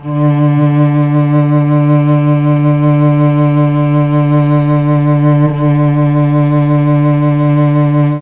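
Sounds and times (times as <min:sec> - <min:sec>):
mellotron chamber cello note D4: 0:00.0 - 0:08.1.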